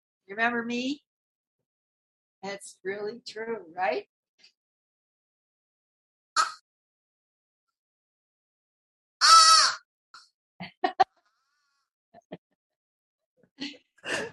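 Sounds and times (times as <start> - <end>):
speech: 0.3 - 1.1, 2.4 - 4.6
crow cawing: 6.4 - 6.6, 9.2 - 9.9.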